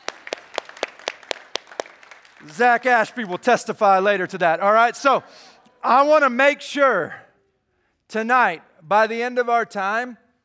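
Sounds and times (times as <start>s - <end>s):
audience applause: 0.0s - 3.4s
speech: 2.4s - 7.2s, 8.1s - 10.2s.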